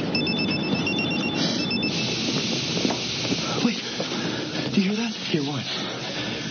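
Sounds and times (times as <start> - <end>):
phone ringing with high electronic trill: 0.1 - 2.4
steady hiss of noise: 0.7 - 6.4.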